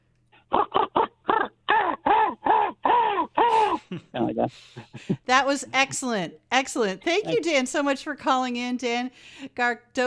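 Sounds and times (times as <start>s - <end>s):
person imitating harsh nasal crow caws: 0.5s - 3.8s
speech: 3.9s - 10.0s.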